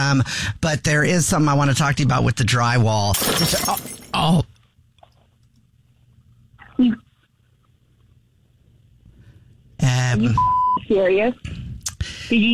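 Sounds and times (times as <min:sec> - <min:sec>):
speech: 0:00.0 - 0:04.5, 0:06.8 - 0:07.0, 0:09.8 - 0:11.6, 0:12.3 - 0:12.5
low hum: 0:00.0 - 0:12.5
glass dropping and shattering: 0:03.1 - 0:04.3.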